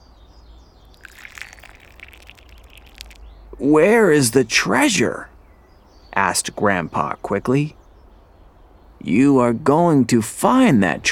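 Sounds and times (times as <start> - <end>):
tea pouring into cups: 0.9 - 3.3
speech: 3.6 - 5.3, 6.2 - 7.8, 9.0 - 11.1.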